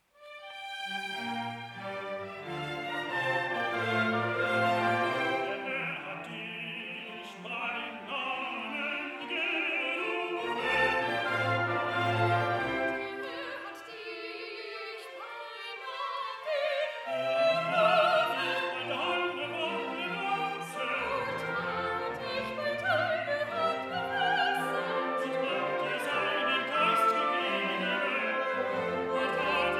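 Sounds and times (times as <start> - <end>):
soprano singing in a duet: 1.8 - 29.7.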